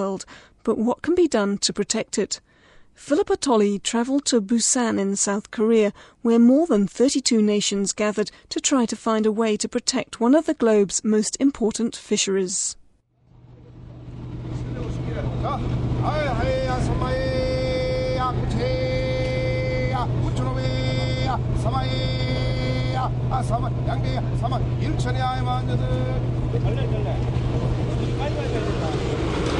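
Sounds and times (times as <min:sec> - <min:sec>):
speech: 0:00.0 - 0:12.8, 0:14.4 - 0:17.2, 0:23.0 - 0:27.5
fishing boat engine rumble at a harbour fish market: 0:13.2 - 0:29.5
indistinct voices at a harbour fish market: 0:14.6 - 0:29.5
bright tonal calls or horn-like toots: 0:16.2 - 0:24.8.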